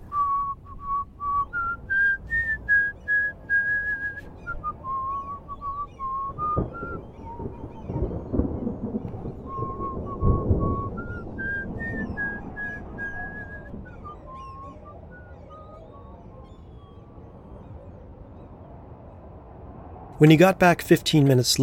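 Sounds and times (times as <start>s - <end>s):
man whistling an old sea shanty tune: 0.0s - 8.0s, 9.4s - 16.2s
low rumbling thunder: 0.0s - 20.2s
heavy weather noise: 0.0s - 21.6s
wind blowing outdoors: 0.0s - 21.6s
speech: 20.2s - 21.6s.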